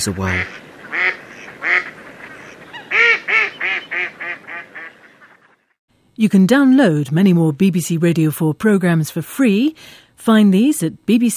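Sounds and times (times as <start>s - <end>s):
speech: 0.0s - 1.1s, 6.2s - 11.3s
mallard giving harsh nasal quacks: 0.1s - 5.6s.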